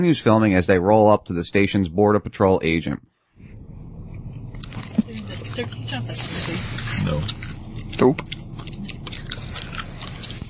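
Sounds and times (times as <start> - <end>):
speech: 0.0 - 3.1, 5.6 - 7.4, 8.0 - 8.3
low hum: 0.1 - 10.4
wet chewing of gum with smacking: 3.5 - 10.4.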